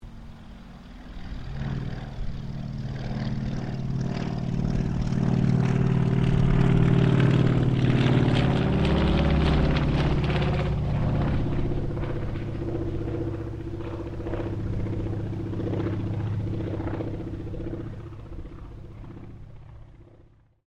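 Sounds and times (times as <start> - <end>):
CAC Wirraway CA-16 aircraft passing: 0.0 - 20.6.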